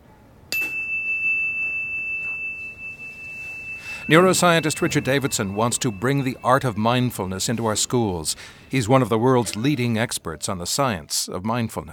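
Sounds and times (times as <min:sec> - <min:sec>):
single bell struck once: 0:00.5 - 0:09.6
speech: 0:04.0 - 0:11.9.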